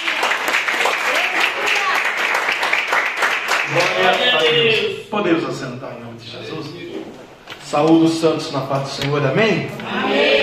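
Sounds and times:
church audience clapping during a service: 0:00.0 - 0:04.9
speech: 0:03.7 - 0:06.9, 0:07.7 - 0:10.2.

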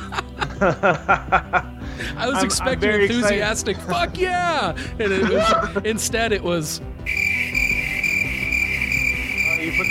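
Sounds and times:
laughter: 0:00.0 - 0:04.1, 0:04.8 - 0:06.0
speech: 0:00.6 - 0:07.2
cricket chirping sound effect: 0:07.1 - 0:09.8.

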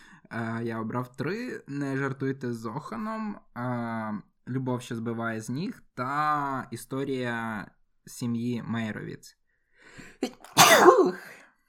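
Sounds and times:
speech: 0:00.3 - 0:09.4, 0:10.0 - 0:11.4
person sneezing: 0:10.2 - 0:11.4.

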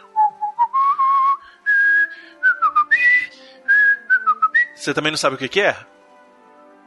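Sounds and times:
person badly whistling a wobbly off-key melody: 0:00.0 - 0:04.8
speech: 0:04.8 - 0:05.9.

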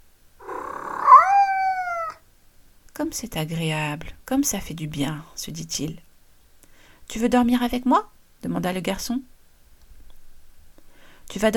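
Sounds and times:
drawn-out cat meow: 0:00.4 - 0:02.2
speech: 0:03.0 - 0:06.0, 0:07.1 - 0:09.3, 0:11.3 - 0:11.5.

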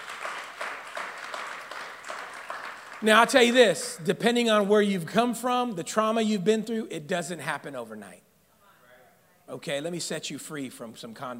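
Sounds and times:
congregation giving a praise clap during a sermon: 0:00.0 - 0:04.0
speech: 0:03.0 - 0:08.3, 0:09.5 - 0:11.3.

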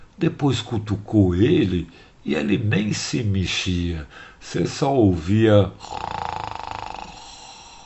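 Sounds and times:
quiet steady hiss: 0:00.0 - 0:07.8
speech: 0:00.2 - 0:06.2
cartoon rooster snoring: 0:05.8 - 0:07.8.

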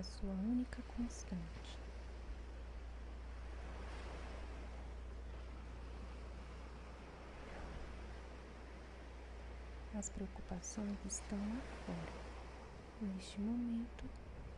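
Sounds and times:
speech: 0:00.0 - 0:01.8, 0:10.0 - 0:12.3, 0:13.0 - 0:14.3
low rumble of wind: 0:00.0 - 0:14.5
ocean surf rolling and washing: 0:00.0 - 0:14.5.

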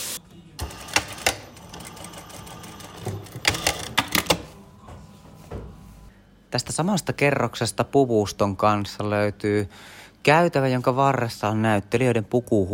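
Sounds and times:
sewing machine whirring in a theatre costume department sewing room: 0:00.6 - 0:04.4
speech: 0:06.5 - 0:12.7.

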